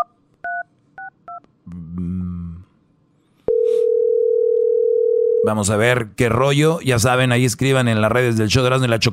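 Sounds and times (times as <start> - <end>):
steady telephone dial tone: 3.5 - 5.4
speech: 5.4 - 9.1.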